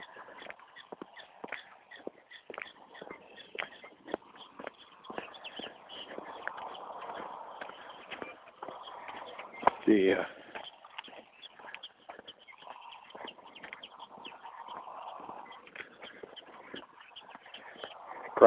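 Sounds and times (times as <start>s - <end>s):
prairie dog on a burrow in a field giving a chirping alarm call: 0.0s - 18.4s
speech: 9.9s - 10.4s.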